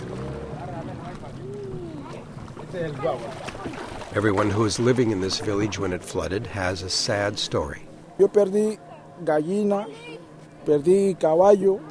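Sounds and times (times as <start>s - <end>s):
outboard motor on a long wooden canoe droning: 0.0s - 11.8s
speech: 2.7s - 11.8s.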